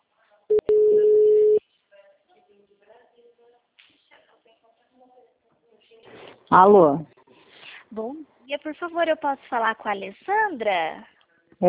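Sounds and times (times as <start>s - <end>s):
quiet talk: 0.0s - 8.4s
phone line ring tone while a call is being placed: 0.5s - 1.6s
speech: 6.5s - 7.1s, 7.9s - 11.6s.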